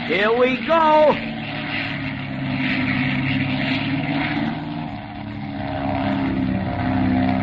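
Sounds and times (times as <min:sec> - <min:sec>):
propeller airplane engine droning while flying tight figure eights: 0:00.0 - 0:07.4.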